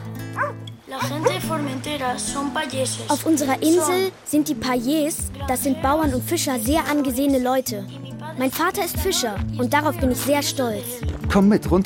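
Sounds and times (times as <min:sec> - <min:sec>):
farm guard dogs barking in short yaps while being petted: 0:00.3 - 0:01.5
speech: 0:00.4 - 0:11.8.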